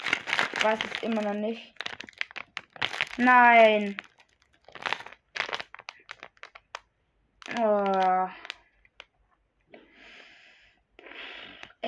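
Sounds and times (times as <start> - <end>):
plastic Lego minifigure mystery bag being cut open and emptied: 0.0 - 9.2
speech: 0.6 - 1.8, 3.2 - 4.1, 7.6 - 8.4.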